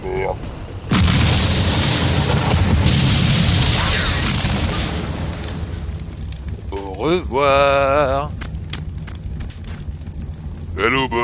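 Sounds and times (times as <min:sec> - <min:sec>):
speech: 0:00.0 - 0:00.6, 0:07.0 - 0:08.4, 0:10.8 - 0:11.2
grenade explosion inside a tank: 0:00.9 - 0:06.3.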